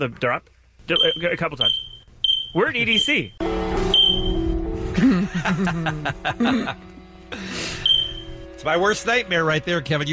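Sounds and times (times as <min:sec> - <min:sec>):
speech: 0:00.0 - 0:01.9, 0:02.5 - 0:07.6, 0:08.6 - 0:10.1
fire alarm shrill electronic beep: 0:01.0 - 0:03.2, 0:03.8 - 0:04.6, 0:07.8 - 0:08.5
people chuckling and snickering: 0:05.0 - 0:07.0.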